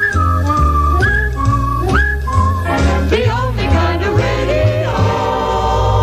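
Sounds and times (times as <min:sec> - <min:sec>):
person whistling a short sliding melody: 0:00.0 - 0:03.1
instrumental music with low bass accompaniment: 0:00.0 - 0:06.0.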